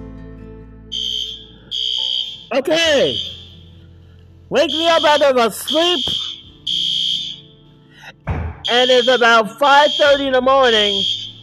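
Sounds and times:
building fire alarm with shrill electronic tone: 0.9s - 3.6s, 4.6s - 7.5s, 8.6s - 11.4s
speech: 2.5s - 3.4s, 4.5s - 6.3s, 8.7s - 11.2s.

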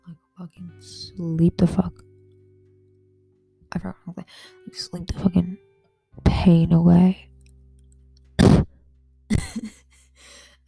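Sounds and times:
speech: 0.5s - 2.0s, 3.8s - 5.6s, 6.4s - 7.3s
person coughing with a rough throaty rasp: 8.4s - 9.9s.

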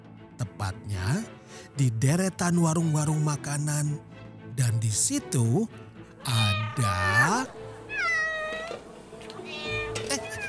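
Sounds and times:
speech: 0.6s - 7.6s
kittens meowing: 6.2s - 8.8s, 9.4s - 10.4s.

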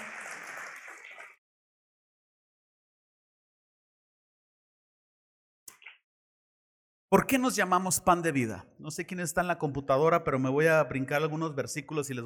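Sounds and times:
audience applause: 0.0s - 1.4s
speech: 7.1s - 12.2s.

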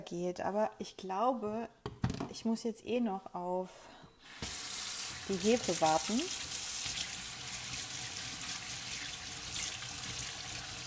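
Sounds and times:
speech: 0.0s - 4.5s, 5.3s - 6.6s
tap water running into sink while washing hands: 4.3s - 10.8s.

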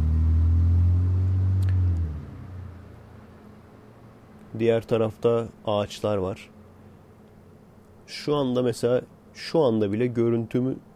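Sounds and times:
car passing by below with deep engine rumble: 0.0s - 4.2s
speech: 4.6s - 6.6s, 8.1s - 10.9s.

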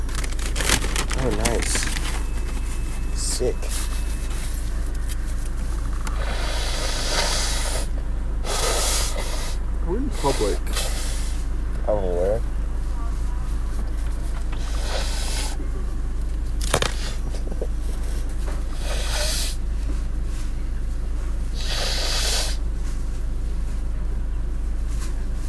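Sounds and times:
steady low hum: 0.0s - 25.4s
speech: 1.2s - 2.0s, 3.4s - 3.9s, 10.2s - 10.8s, 11.9s - 12.5s
person blowing nose: 6.2s - 9.6s, 18.8s - 19.6s, 21.6s - 22.6s.

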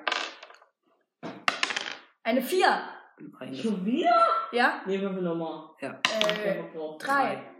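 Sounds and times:
dice clattering and rattling across a hard surface: 0.0s - 0.7s, 1.4s - 2.1s, 6.1s - 6.5s
speech: 2.3s - 7.5s.

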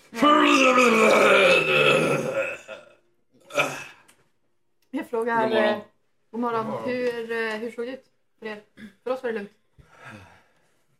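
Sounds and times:
speech: 0.1s - 1.3s, 5.2s - 10.3s
father grunting: 0.2s - 2.9s
father groaning during a morning stretch in a forest: 0.2s - 4.0s.

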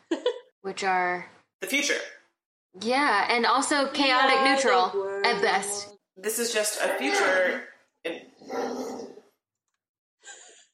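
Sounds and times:
speech: 0.7s - 2.2s, 2.8s - 8.9s
dog growling: 8.2s - 9.3s.

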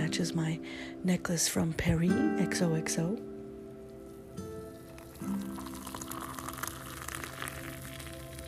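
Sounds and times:
speech: 0.2s - 3.3s
hot coffee pouring into a coffee mug: 4.6s - 8.4s.

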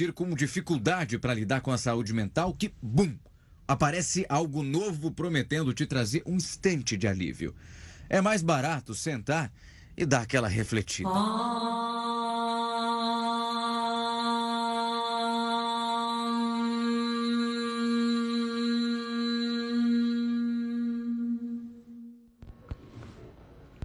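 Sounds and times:
speech: 0.0s - 12.0s
person chanting om as in yoga: 11.0s - 22.2s.

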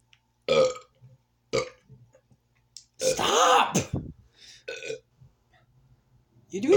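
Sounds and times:
person burping after drinking soda: 0.5s - 0.9s, 1.6s - 1.8s, 3.0s - 4.1s, 4.7s - 5.0s
person shouting: 3.1s - 4.0s
speech: 6.5s - 6.7s.

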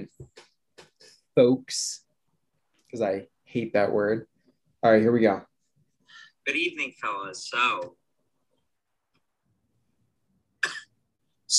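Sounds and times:
speech: 1.4s - 2.0s, 2.9s - 5.5s, 6.4s - 8.0s
small raspy cough: 10.6s - 11.0s.

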